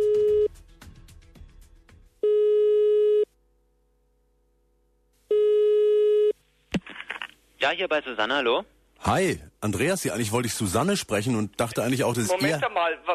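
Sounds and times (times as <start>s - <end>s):
telephone ringback tone during an outgoing call: 2.2s - 3.3s, 5.3s - 6.4s
speech: 7.6s - 13.1s.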